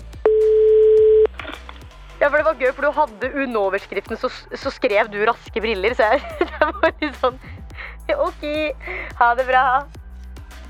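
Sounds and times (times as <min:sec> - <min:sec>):
telephone ringing tone while placing a call: 0:00.3 - 0:01.3
speech: 0:02.2 - 0:10.0
laughter: 0:05.9 - 0:08.7.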